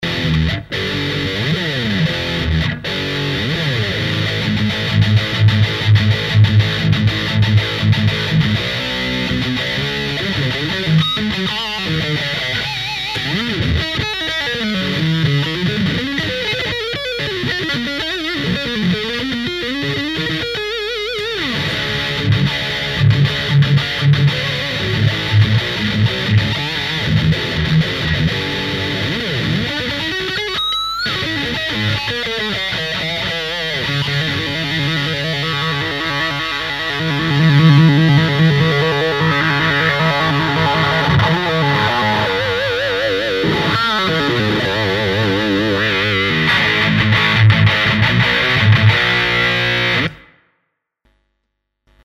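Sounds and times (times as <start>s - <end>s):
metal electric guitar through amplifier with distortion pedal: 0.0s - 50.4s.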